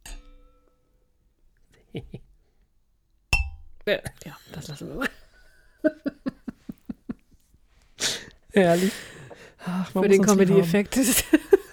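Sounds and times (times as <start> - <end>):
wine glasses clinking in a toast: 0.0 - 0.8, 3.4 - 3.8
speech: 1.9 - 2.3, 3.9 - 5.2, 8.6 - 9.1, 9.7 - 11.5
laughter: 4.8 - 7.4, 10.2 - 11.7.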